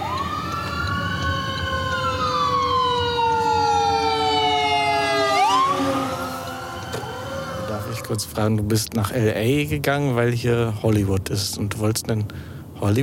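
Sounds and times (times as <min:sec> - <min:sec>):
emergency vehicle siren wailing behind a car driving toward Los Angeles: 0:00.0 - 0:08.7
speech: 0:08.1 - 0:13.0.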